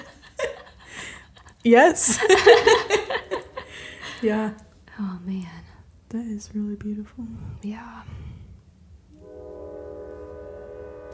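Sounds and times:
laughter: 0.0s - 4.4s
speech: 1.6s - 3.4s, 4.2s - 8.4s
train horn blaring: 9.2s - 11.1s.

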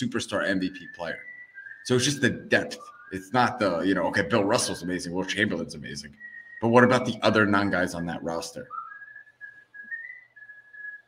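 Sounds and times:
speech: 0.0s - 8.8s
person whistling: 0.6s - 4.9s, 6.1s - 7.3s, 8.6s - 11.0s.

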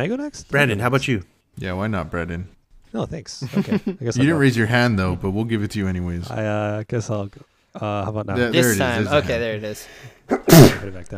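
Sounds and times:
speech: 0.0s - 11.1s
loud explosive sneeze: 10.3s - 11.0s.

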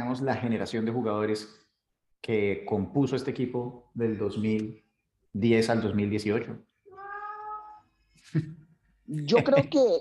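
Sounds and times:
speech: 0.2s - 1.6s, 2.2s - 6.7s, 8.3s - 9.9s
cat meowing: 6.9s - 7.8s.

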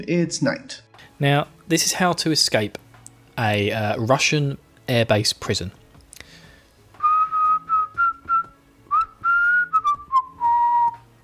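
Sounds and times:
speech: 0.0s - 2.8s, 3.4s - 5.8s
person whistling a tune: 7.0s - 11.0s.

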